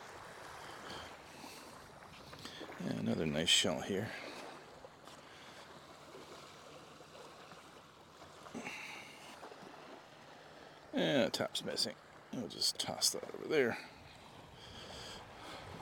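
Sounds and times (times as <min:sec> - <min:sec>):
calm ocean waves washing onto a beach: 0:00.0 - 0:15.8
speech: 0:02.8 - 0:04.2, 0:11.0 - 0:13.9.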